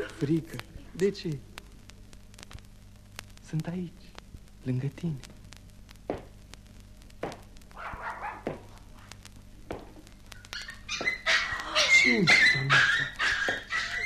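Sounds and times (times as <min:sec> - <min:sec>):
speech: 0:00.2 - 0:01.5, 0:03.5 - 0:04.1, 0:04.7 - 0:05.3, 0:12.1 - 0:12.4
two puppies whimpering and yelping: 0:10.5 - 0:14.0.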